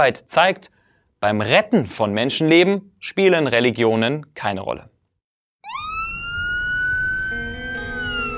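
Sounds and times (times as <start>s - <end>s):
speech: 0.0s - 4.9s
ambulance siren wailing: 5.6s - 8.3s.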